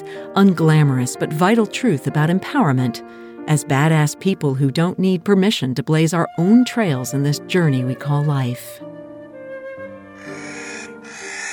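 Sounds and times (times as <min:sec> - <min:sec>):
speech: 0:00.3 - 0:08.9
crow calling with a harsh drawn-out cry: 0:10.2 - 0:11.5.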